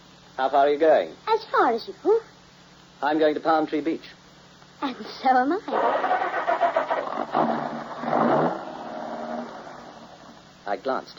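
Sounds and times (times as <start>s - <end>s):
speech: 0.4s - 2.4s, 3.0s - 4.2s, 4.8s - 6.4s, 10.7s - 11.1s
car engine cranking and starting: 5.7s - 10.2s.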